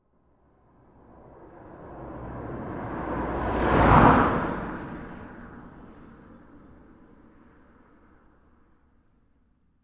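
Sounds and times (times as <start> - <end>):
BMW car passing on a country road: 0.9 - 5.9.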